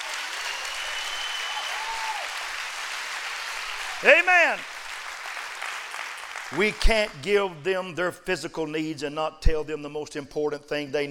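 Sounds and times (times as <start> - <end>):
audience clapping hands in a dense burst of applause: 0.0 - 7.3
speech: 4.0 - 4.7, 6.5 - 11.0.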